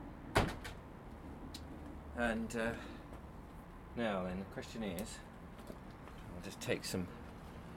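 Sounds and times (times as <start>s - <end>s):
door being shut: 0.3s - 0.8s
speech: 2.2s - 3.0s, 3.9s - 5.3s, 6.4s - 7.2s.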